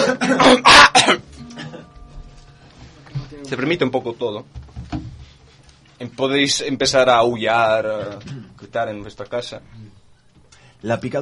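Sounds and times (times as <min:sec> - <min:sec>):
person coughing in rough bursts: 0:00.0 - 0:02.0, 0:08.1 - 0:08.6
speech: 0:03.5 - 0:04.6, 0:06.0 - 0:10.0, 0:10.8 - 0:11.2.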